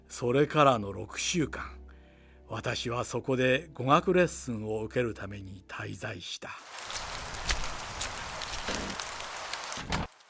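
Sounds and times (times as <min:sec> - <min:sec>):
speech: 0:00.1 - 0:01.8, 0:02.5 - 0:06.9
heavy rain of the rainy season falling: 0:06.7 - 0:10.2.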